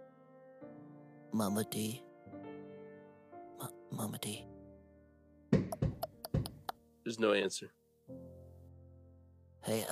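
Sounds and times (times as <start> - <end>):
speech: 1.3 - 2.1, 3.6 - 4.5, 7.1 - 7.8, 9.6 - 9.9
heavy knocks on the wooden door of a room: 5.5 - 6.7.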